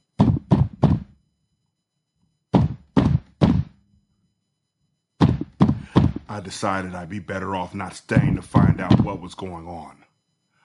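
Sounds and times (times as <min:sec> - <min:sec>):
heavy forceful knocks on a door aboard a boat in Bari Italy: 0:00.2 - 0:01.1, 0:02.6 - 0:03.8, 0:05.2 - 0:06.3, 0:08.2 - 0:09.3
speech: 0:06.3 - 0:10.1.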